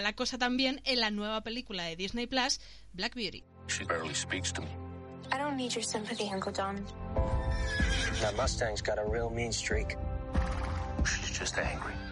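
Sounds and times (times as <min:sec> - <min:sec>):
speech: 0:00.0 - 0:10.1, 0:11.0 - 0:12.0
horse whinnying: 0:07.4 - 0:08.4.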